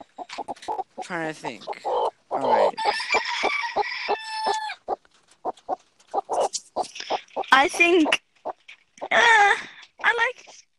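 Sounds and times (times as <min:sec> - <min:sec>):
chickens clucking: 0:00.0 - 0:10.6
speech: 0:01.0 - 0:03.2, 0:07.6 - 0:08.2
rooster crowing: 0:02.6 - 0:04.8.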